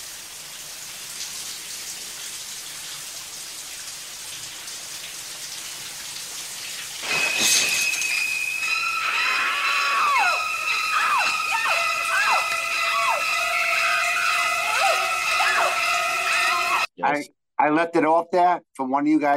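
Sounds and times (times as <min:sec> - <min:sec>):
shrieking high strings from horror film music: 0:07.0 - 0:16.9
speech: 0:17.1 - 0:19.3.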